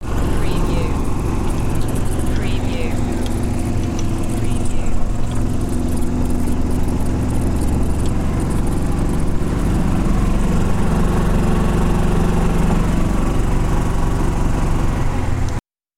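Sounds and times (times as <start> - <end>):
golf cart: 0.0 - 15.6.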